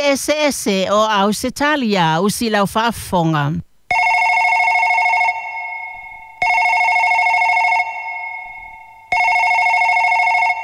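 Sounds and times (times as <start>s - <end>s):
speech: 0.0s - 3.7s
telephone ringing with a call from Brisbane, Queensland: 3.9s - 10.6s.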